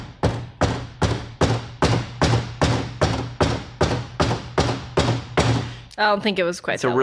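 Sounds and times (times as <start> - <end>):
woman knocking on the door of a large house: 0.0 - 5.8
speech: 6.0 - 7.0.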